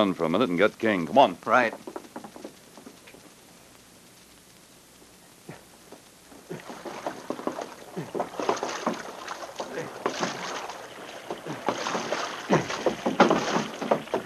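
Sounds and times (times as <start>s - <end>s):
speech: 0.0s - 2.0s
canoe paddle dipping through water: 6.4s - 14.2s.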